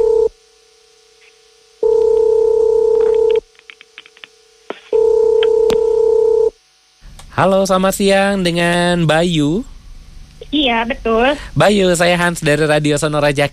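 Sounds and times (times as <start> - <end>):
steady telephone dial tone: 1.8 - 3.4, 5.0 - 6.5
speech: 7.4 - 9.7, 10.5 - 13.5.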